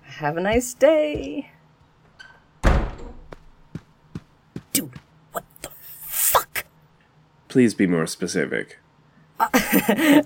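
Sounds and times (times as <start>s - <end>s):
speech: 0.2s - 1.6s, 7.6s - 8.8s, 9.4s - 10.2s
door swinging shut with a loud thud: 2.2s - 3.3s
laughter: 9.4s - 10.2s.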